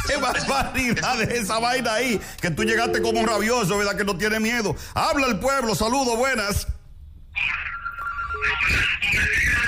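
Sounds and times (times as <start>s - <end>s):
speech: 0.1s - 6.7s, 8.4s - 9.5s
telephone ringing electronically for an incoming call: 2.6s - 3.7s.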